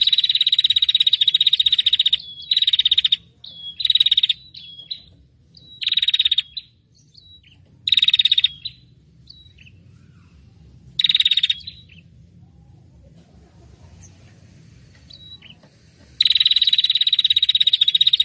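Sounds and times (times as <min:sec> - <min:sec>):
prinia noisy call used as a trapping lure: 0:00.0 - 0:06.8, 0:07.4 - 0:09.7, 0:11.0 - 0:12.2, 0:15.1 - 0:18.2.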